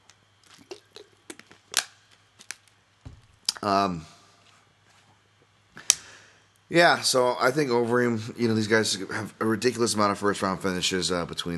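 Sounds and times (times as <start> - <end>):
low steady hum: 0.0 - 11.5
person drinking water: 0.4 - 1.6
speech: 3.6 - 4.1, 6.7 - 11.5.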